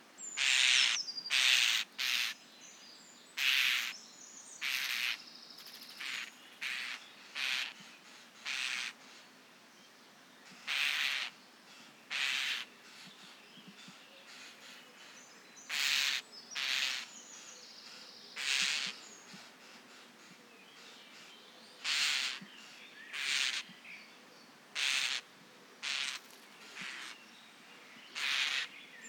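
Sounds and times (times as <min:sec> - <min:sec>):
starling alarm call: 0:00.4 - 0:02.4, 0:03.4 - 0:04.0, 0:04.6 - 0:09.2, 0:10.6 - 0:17.5, 0:18.4 - 0:20.1, 0:20.8 - 0:23.7, 0:24.7 - 0:27.3, 0:28.1 - 0:29.0.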